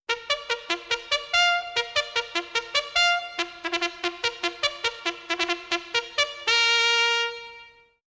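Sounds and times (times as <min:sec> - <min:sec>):
troop hunting horn: 0:00.1 - 0:08.0.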